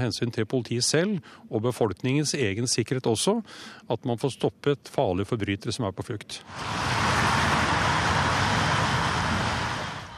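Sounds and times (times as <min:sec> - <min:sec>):
speech: 0:00.0 - 0:07.2
car tyres swishing over rain-wet asphalt: 0:06.5 - 0:10.1.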